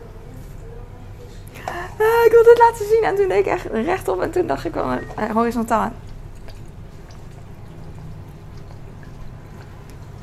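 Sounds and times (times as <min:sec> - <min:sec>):
steady low hum: 0:00.0 - 0:10.2
speech: 0:02.4 - 0:06.0
sesame oil dripping from dispenser bottle: 0:05.1 - 0:10.2.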